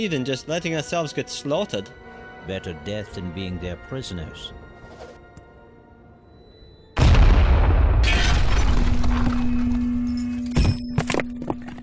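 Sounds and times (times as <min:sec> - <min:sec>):
speech: 0:00.0 - 0:04.6
grenade explosion during an attack: 0:07.0 - 0:09.9
debris falling: 0:07.0 - 0:11.8.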